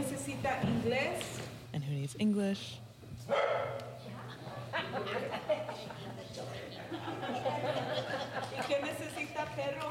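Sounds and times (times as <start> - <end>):
speech: 0.4 - 3.9, 4.9 - 9.8
stray dog barking in a church meeting: 3.3 - 3.9
laughter: 4.3 - 8.9.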